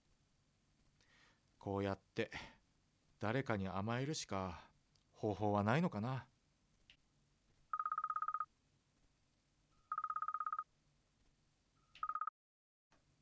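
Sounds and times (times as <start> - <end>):
speech: 1.6 - 2.6, 3.2 - 6.3
phone ringing with trilling electronic tones for incoming call: 7.7 - 8.5, 9.7 - 10.7, 11.8 - 12.3.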